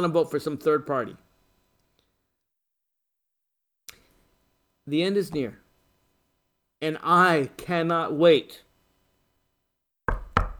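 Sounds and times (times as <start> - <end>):
speech: 0.0 - 1.2, 4.9 - 5.6, 6.8 - 8.6
sharp knocks on a wooden surface: 10.1 - 10.5.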